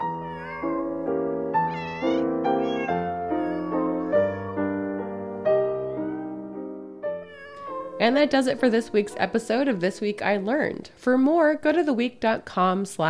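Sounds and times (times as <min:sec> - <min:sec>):
neighborhood cats and kittens mewing at a meat seller: 0:00.0 - 0:05.0, 0:07.2 - 0:08.2
speech: 0:08.0 - 0:13.0.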